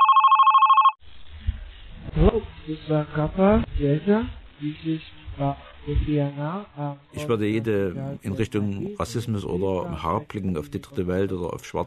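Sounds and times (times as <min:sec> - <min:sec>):
telephone ringing with an incoming call: 0:00.0 - 0:01.0
speech: 0:02.2 - 0:11.8.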